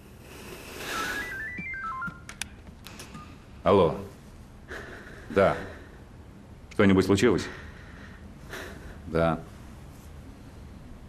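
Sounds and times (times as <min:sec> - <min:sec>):
telephone ringtone melody of stepped electronic notes: 0:00.9 - 0:02.3
sharp clicks: 0:02.1 - 0:03.2
speech: 0:03.6 - 0:04.1, 0:05.3 - 0:05.7, 0:06.8 - 0:07.6, 0:09.1 - 0:09.5.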